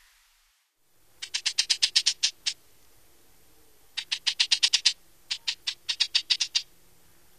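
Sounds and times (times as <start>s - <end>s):
cactus wren rattling and clicking: 1.2s - 2.6s, 3.9s - 6.7s.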